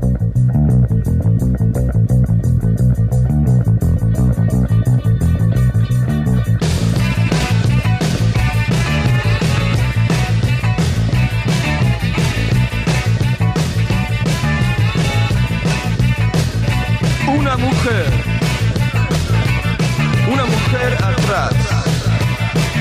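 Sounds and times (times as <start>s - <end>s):
rock song from an album with distorted riff: 0.1s - 22.7s
heavy drums and cymbals crashing: 6.7s - 22.7s.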